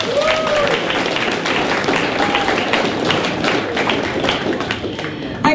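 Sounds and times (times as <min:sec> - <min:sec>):
cheers from a ute muster crowd: 0:00.0 - 0:04.7
crowd at a ute muster applauding the winner: 0:00.0 - 0:05.4.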